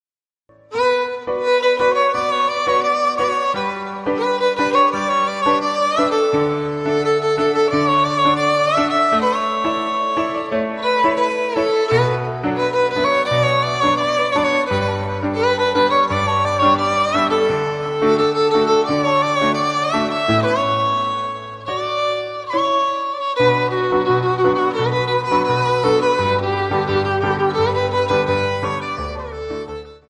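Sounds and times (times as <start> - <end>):
violin ringtone melody: 0.7 - 30.0.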